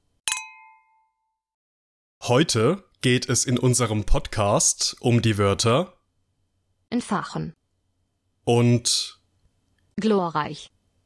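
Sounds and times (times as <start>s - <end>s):
glasses clinking together in a toast: 0.3s - 1.1s
speech: 2.2s - 6.0s, 6.9s - 7.6s, 8.5s - 9.2s, 10.0s - 10.7s.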